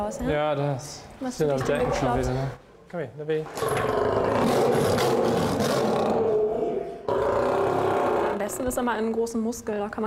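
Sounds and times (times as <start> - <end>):
speech: 0.0 - 5.5, 8.6 - 10.0
angry male lion roaring in a zoo lion house treatment room: 3.6 - 8.4.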